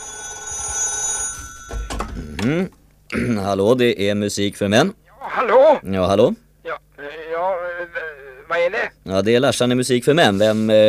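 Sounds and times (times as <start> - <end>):
old-style telephone bell ringing: 0.0 - 2.4
handling noise: 0.6 - 2.8
speech: 2.4 - 7.6, 8.5 - 10.8.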